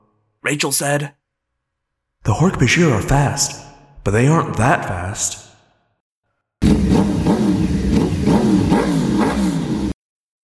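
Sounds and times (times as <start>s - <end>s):
speech: 0.5s - 1.2s, 2.2s - 5.5s
Yamaha and Kawasaki dirt bike engines roaring and sputtering: 6.6s - 10.0s.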